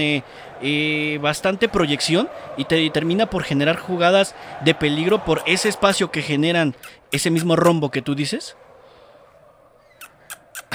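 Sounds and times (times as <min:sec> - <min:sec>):
speech: 0:00.0 - 0:08.6
laughter: 0:00.0 - 0:10.7
small bird chirping: 0:09.6 - 0:10.7.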